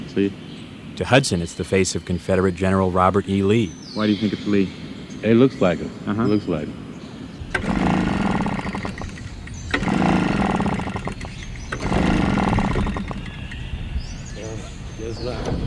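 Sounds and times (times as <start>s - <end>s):
speech: 0.2s - 6.8s
small gasoline leaf blower engine sputtering and revving at a memorial: 7.5s - 13.7s.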